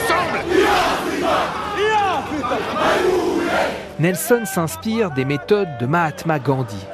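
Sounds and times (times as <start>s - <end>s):
crowd of youth league protesters chanting on the street: 0.0s - 4.0s, 6.7s - 6.9s
speech: 4.0s - 6.9s.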